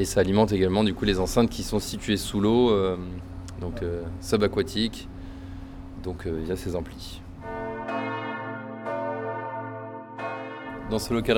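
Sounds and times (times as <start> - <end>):
speech: 0.0 - 5.1, 6.0 - 7.2, 10.9 - 11.3
church bell struck by automated strikers: 7.4 - 11.3.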